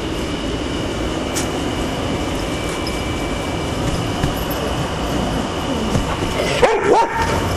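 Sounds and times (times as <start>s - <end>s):
steady mechanical hum: 0.0s - 7.5s
barks of neighbor's dogs: 6.2s - 7.5s.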